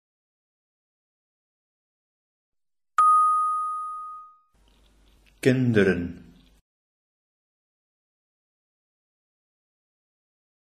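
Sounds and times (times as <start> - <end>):
bell ringing: 3.0 - 4.5
speech: 5.4 - 6.3.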